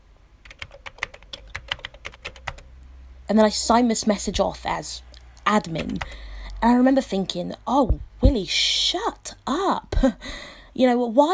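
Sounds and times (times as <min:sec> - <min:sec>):
typing on a computer keyboard: 0:00.4 - 0:02.7, 0:05.7 - 0:06.2
speech: 0:03.3 - 0:11.3.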